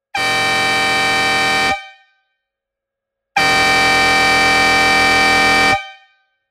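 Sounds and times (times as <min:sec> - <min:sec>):
12V 24V chrome 208mm two-tone fanfare horn: 0:00.2 - 0:02.0, 0:03.4 - 0:06.1.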